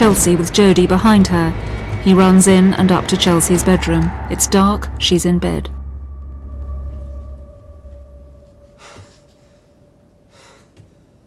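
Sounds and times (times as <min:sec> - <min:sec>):
speech: 0:00.0 - 0:05.8
steady low hum: 0:00.0 - 0:11.2
man breathing heavily with rasping breaths: 0:08.7 - 0:11.2.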